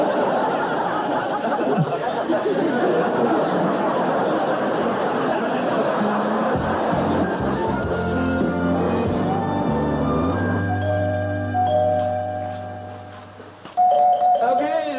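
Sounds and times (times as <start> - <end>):
laughter: 0.0 - 9.5
chiming doorbell ringing: 10.7 - 13.1, 13.8 - 14.8.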